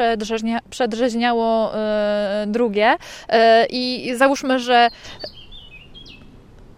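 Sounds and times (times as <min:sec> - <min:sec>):
speech: 0:00.0 - 0:05.4
steady hiss: 0:00.5 - 0:06.7
common whitethroat singing: 0:03.8 - 0:06.3.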